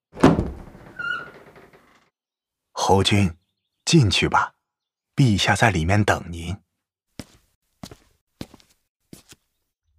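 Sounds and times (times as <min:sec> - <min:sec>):
door to a palace study being pushed open: 0:00.1 - 0:02.1
speech: 0:02.9 - 0:04.6, 0:05.2 - 0:06.6.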